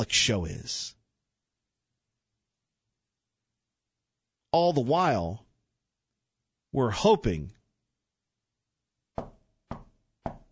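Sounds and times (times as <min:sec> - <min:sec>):
speech: 0:00.0 - 0:01.0, 0:04.5 - 0:05.4, 0:06.7 - 0:07.6
knocking on a door: 0:09.2 - 0:10.5.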